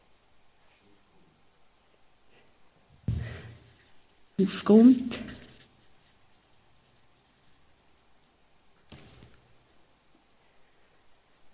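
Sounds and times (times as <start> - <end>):
pen writing on paper: 3.7 - 8.3
speech: 4.4 - 5.3.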